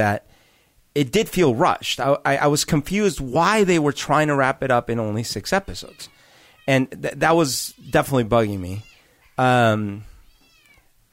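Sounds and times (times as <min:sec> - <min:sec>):
speech: 0:00.0 - 0:00.3, 0:01.0 - 0:10.1
cat meowing: 0:05.8 - 0:07.0, 0:07.6 - 0:10.9.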